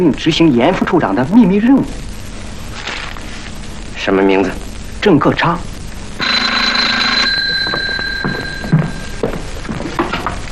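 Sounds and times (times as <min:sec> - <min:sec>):
speech: 0:00.0 - 0:02.1, 0:04.0 - 0:05.7
telephone ringing with electronic tone: 0:06.2 - 0:10.4.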